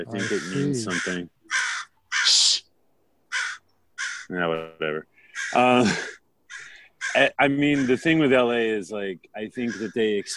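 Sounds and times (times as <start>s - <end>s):
speech: 0.0s - 1.4s, 4.3s - 6.2s, 7.1s - 10.3s
crow cawing in Los Angeles: 0.1s - 2.4s, 3.3s - 4.3s, 5.2s - 8.3s, 9.6s - 10.3s.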